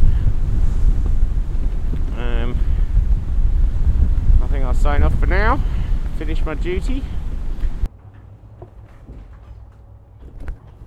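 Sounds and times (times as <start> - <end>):
wind buffeting the microphone in sleet and mist: 0.0 - 7.9
choppy open sea rumble in sleet and mist: 0.0 - 10.8
speech: 4.9 - 7.2.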